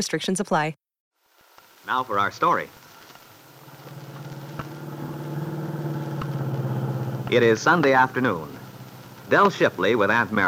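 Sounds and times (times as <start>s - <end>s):
speech: 0.0s - 0.8s, 1.9s - 2.8s, 7.3s - 8.5s, 9.3s - 10.4s
car engine humming while driving: 3.1s - 10.4s
thumps of a driven car: 3.6s - 7.8s.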